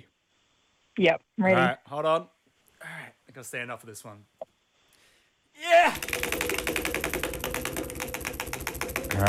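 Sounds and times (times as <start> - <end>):
speech: 1.0 - 2.4, 3.4 - 4.5, 5.6 - 6.8
prize wheel spinning and clicking: 6.0 - 9.2.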